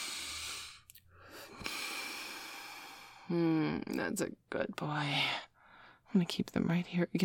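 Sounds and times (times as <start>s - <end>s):
deep inhaling breath: 0.0s - 3.3s
speech: 3.3s - 5.5s, 6.1s - 7.2s.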